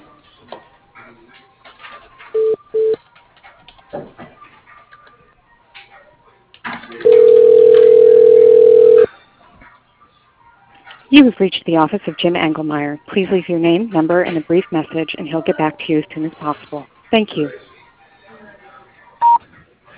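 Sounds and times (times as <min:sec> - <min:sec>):
telephone line tones as a call is transferred to voicemail: 0:07.0 - 0:09.1
speech: 0:11.2 - 0:17.6.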